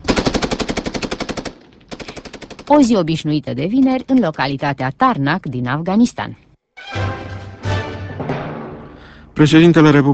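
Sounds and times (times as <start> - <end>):
automatic gunfire during military training: 0.0 - 2.8
speech: 2.7 - 6.5, 9.4 - 10.1.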